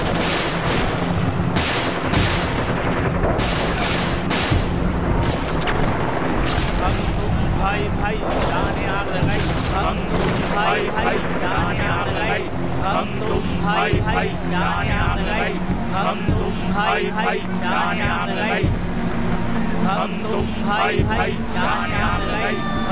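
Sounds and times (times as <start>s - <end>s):
tear gas launchers firing at a protest: 0.0s - 7.4s
protest crowd chanting: 6.8s - 22.9s.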